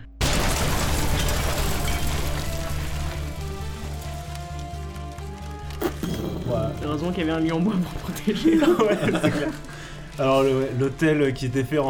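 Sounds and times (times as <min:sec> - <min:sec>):
loud explosion: 0:00.2 - 0:04.0, 0:05.8 - 0:08.6
crackling debris: 0:00.2 - 0:11.8
speech: 0:06.9 - 0:11.8
laughter: 0:07.4 - 0:10.0.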